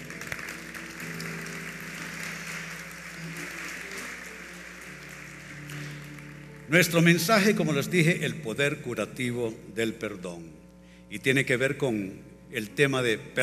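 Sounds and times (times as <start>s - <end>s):
sizable audience applause: 0.0s - 7.1s
low humming musical tone: 0.0s - 13.4s
speech: 6.7s - 13.4s.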